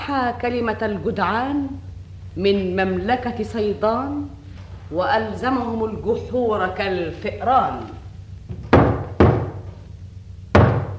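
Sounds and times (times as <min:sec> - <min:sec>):
speech: 0:00.1 - 0:08.0
heavy knocks on a door: 0:08.5 - 0:09.8, 0:10.5 - 0:10.9.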